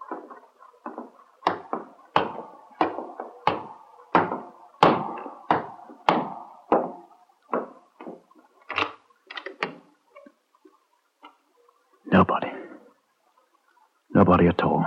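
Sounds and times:
heavy footsteps going up wooden stairs: 0:00.0 - 0:08.3
speech: 0:12.1 - 0:12.5, 0:14.2 - 0:14.8.

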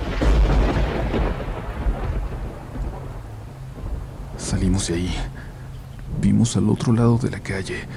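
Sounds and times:
deep rumbling roll of thunder: 0:00.0 - 0:06.6
heavy rain pouring down: 0:00.0 - 0:06.6
speech: 0:04.5 - 0:05.4, 0:06.2 - 0:07.9.

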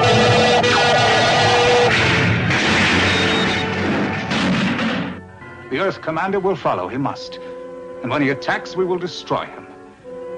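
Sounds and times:
starship phasers firing point blank: 0:00.0 - 0:05.2
speech: 0:05.9 - 0:07.4, 0:08.0 - 0:09.7.

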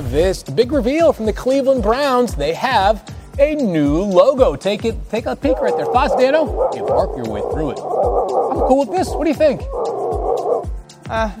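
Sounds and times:
speech: 0:00.1 - 0:11.3
dog barking with yippy whiny woofs: 0:05.4 - 0:10.7.

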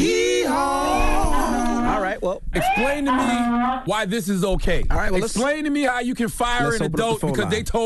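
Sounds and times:
donkey braying: 0:00.0 - 0:03.9
speech: 0:02.6 - 0:07.8.

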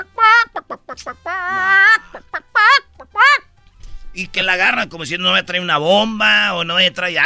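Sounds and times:
voice imitating chicken clucks and squawks: 0:00.0 - 0:03.5
speech: 0:01.0 - 0:01.2, 0:04.2 - 0:07.2.

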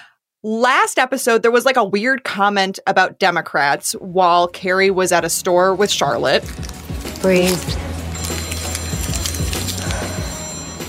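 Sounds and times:
speech: 0:00.4 - 0:07.9
telephone ringing from an unknown caller: 0:07.9 - 0:10.8.

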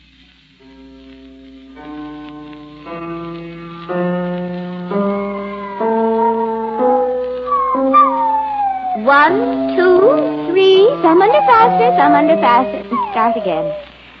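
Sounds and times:
piano playing steady stepped notes: 0:00.6 - 0:14.1
spaniel howling: 0:04.9 - 0:14.0
speech: 0:09.1 - 0:09.6, 0:10.9 - 0:13.9.

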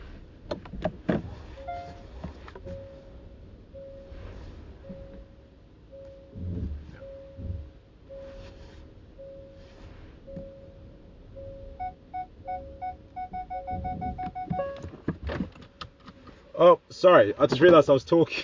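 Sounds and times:
car engine rumble: 0:00.0 - 0:18.4
car parking sensor beeps: 0:01.6 - 0:08.6, 0:09.2 - 0:09.7, 0:10.3 - 0:15.1
mechanical clunks and clicks: 0:13.2 - 0:16.2
speech: 0:16.6 - 0:18.4.

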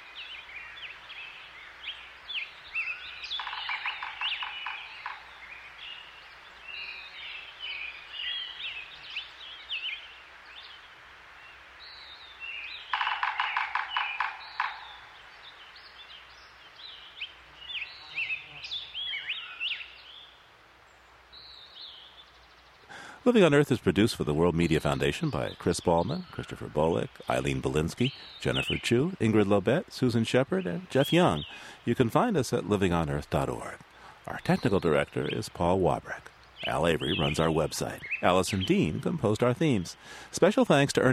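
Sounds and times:
birds chirping and trilling in the high Sierra mountains of California: 0:00.0 - 0:41.1
woodpecker drumming in the high Sierra mountains: 0:02.8 - 0:06.0, 0:12.7 - 0:15.6, 0:22.9 - 0:41.1
speech: 0:23.2 - 0:41.1.

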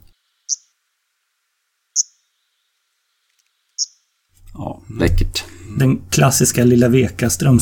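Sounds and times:
Arctic warbler call notes: 0:00.0 - 0:00.8, 0:01.9 - 0:04.2
speech: 0:04.9 - 0:07.6.

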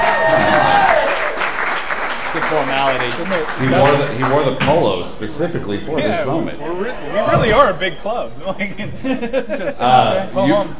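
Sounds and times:
cheering: 0:00.0 - 0:04.0
crowd clapping: 0:00.0 - 0:05.0
speech: 0:02.5 - 0:10.7
laughter: 0:08.5 - 0:10.4.

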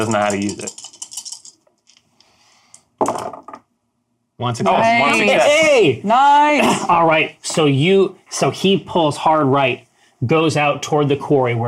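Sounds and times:
speech: 0:00.0 - 0:00.8, 0:04.4 - 0:11.6
dice clattering on a hard surface: 0:00.0 - 0:02.0.

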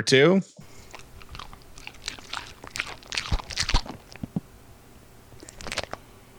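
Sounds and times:
quick lick: 0:00.6 - 0:04.4, 0:05.4 - 0:06.0
wet chewing of cheese: 0:00.6 - 0:04.5, 0:05.3 - 0:06.0.

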